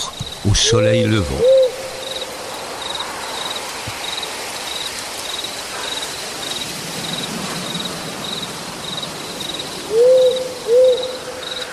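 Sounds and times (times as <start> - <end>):
tawny owl hooting: 0.0 - 2.2, 9.9 - 11.7
insect chirring: 0.0 - 11.7
speech: 0.4 - 1.6.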